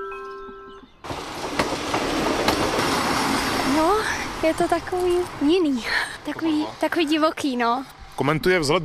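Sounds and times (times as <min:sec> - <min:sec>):
steady tonal whine of a train arriving at a station: 0:00.3 - 0:07.8
sharp rhythmic clacks of train wheels: 0:00.4 - 0:06.4
speech: 0:04.4 - 0:08.8.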